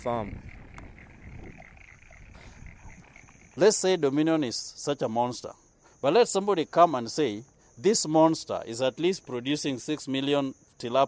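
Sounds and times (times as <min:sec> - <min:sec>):
speech: 0:00.0 - 0:00.5, 0:03.6 - 0:11.0
constant outdoor hum: 0:00.0 - 0:04.7
chorus of frogs croaking across open wet irrigated fields: 0:00.0 - 0:11.0.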